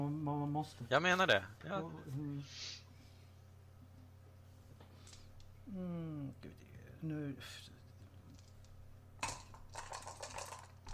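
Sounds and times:
speech: 0.0 - 2.8, 5.7 - 7.8
dice rolled onto a hard table: 8.3 - 10.9.

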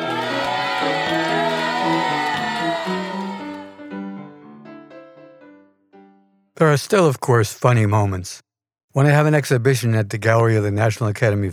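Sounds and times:
large crowd cheering and whooping wildly: 0.0 - 3.9
speech: 6.6 - 8.4, 9.0 - 11.5.

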